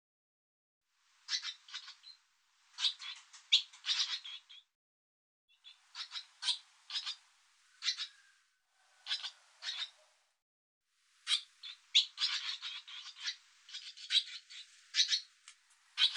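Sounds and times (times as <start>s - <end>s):
Barn swallow twittering: 1.3s - 2.2s, 2.8s - 4.7s, 5.5s - 8.4s, 9.0s - 10.1s, 11.2s - 15.3s, 16.0s - 16.1s.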